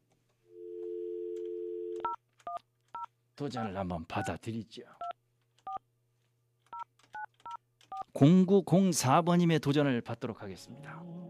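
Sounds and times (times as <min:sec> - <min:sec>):
steady telephone dial tone: 0:00.6 - 0:02.2
speech: 0:03.4 - 0:05.0, 0:08.2 - 0:11.2.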